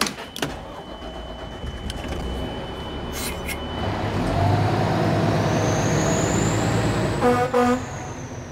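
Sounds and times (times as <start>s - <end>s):
fire truck engine rumbling: 0.0s - 8.4s
road noise: 1.9s - 8.4s
horn blast: 7.2s - 8.1s.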